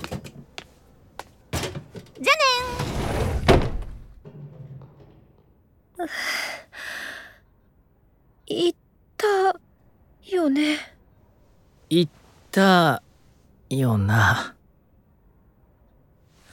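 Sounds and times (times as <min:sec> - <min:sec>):
desk and chair scraping drag as they are moved away: 0:01.6 - 0:05.5
desk and chair thumping and knocking as they are moved: 0:02.7 - 0:05.4
speech: 0:06.0 - 0:06.3, 0:08.5 - 0:08.8, 0:11.9 - 0:13.0, 0:13.7 - 0:14.6.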